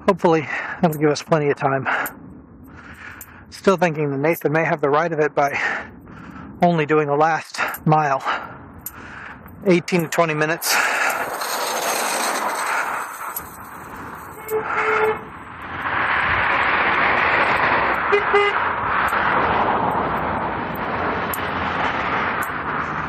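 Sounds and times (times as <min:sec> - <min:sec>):
speech: 0:00.1 - 0:02.2, 0:03.5 - 0:05.9, 0:06.6 - 0:08.4, 0:09.6 - 0:10.8
roar of passing traffic: 0:01.8 - 0:03.5, 0:05.6 - 0:06.8, 0:07.6 - 0:23.0
car horn honking: 0:14.3 - 0:15.3, 0:18.1 - 0:18.6.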